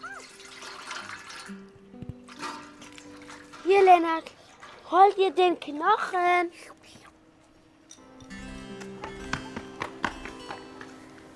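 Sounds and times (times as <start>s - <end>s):
water being poured for a dog: 0.0s - 5.4s
speech: 3.7s - 6.8s.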